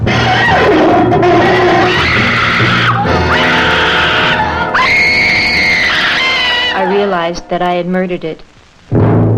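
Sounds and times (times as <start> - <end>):
person screaming loudly and shrilly: 0.1 - 7.1
speech: 7.5 - 9.3.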